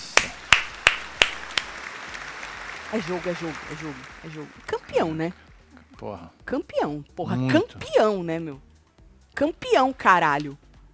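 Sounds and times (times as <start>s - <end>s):
slow hand claps: 0.0s - 5.3s
speech: 2.9s - 8.7s, 9.4s - 10.6s.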